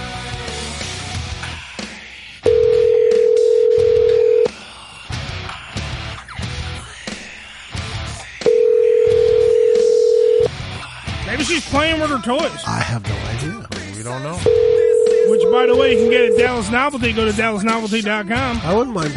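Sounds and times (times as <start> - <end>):
phone line ringback tone on an outgoing call: 2.5 - 4.5, 8.5 - 10.5, 14.4 - 16.7
speech: 11.8 - 14.7, 15.3 - 19.1.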